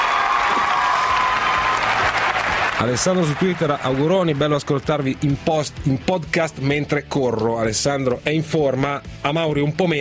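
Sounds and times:
studio applause: 0:00.0 - 0:05.7
speech: 0:02.8 - 0:09.9.

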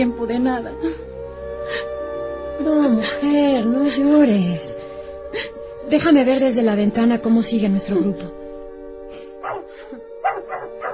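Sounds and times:
speech: 0:00.0 - 0:01.1, 0:02.6 - 0:04.7, 0:05.3 - 0:08.4
dog giving short yelping barks: 0:09.4 - 0:10.9.

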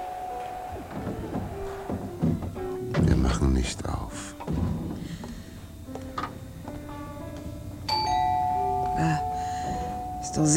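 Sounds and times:
doorbell ringing: 0:00.0 - 0:02.9, 0:06.9 - 0:10.5
speech: 0:03.3 - 0:05.2, 0:10.4 - 0:10.5.

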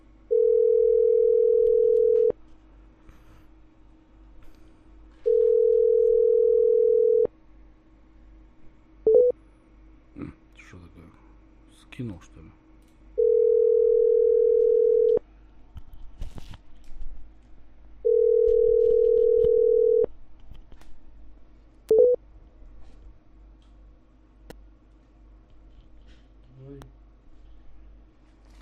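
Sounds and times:
telephone ringback tones on a call: 0:00.3 - 0:02.3, 0:05.2 - 0:07.3, 0:13.2 - 0:15.2, 0:18.0 - 0:20.1
speech: 0:12.0 - 0:12.6.

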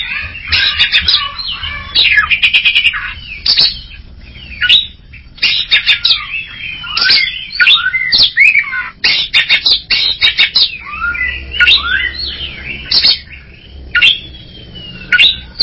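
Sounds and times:
greater green leafbird chirping song: 0:00.0 - 0:15.6.

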